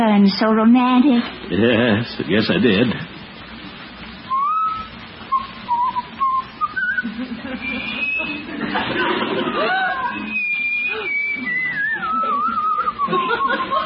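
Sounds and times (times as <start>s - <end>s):
speech: 0.0s - 3.1s
seated man whistling a wandering tune: 4.3s - 8.5s, 9.9s - 13.8s
laughter: 6.9s - 13.8s.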